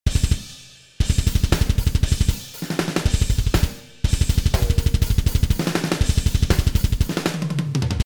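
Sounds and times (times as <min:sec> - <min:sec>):
metal groove music: 0:00.1 - 0:07.7.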